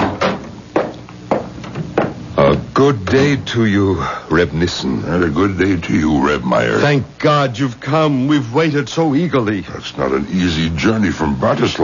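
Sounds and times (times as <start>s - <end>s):
door opening: 1.6s - 3.5s
speech: 2.8s - 11.8s.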